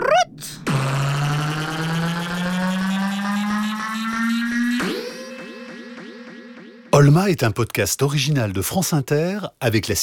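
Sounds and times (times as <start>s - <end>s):
boat engine revving as boat departs: 0.6s - 5.0s
speech: 7.0s - 10.0s.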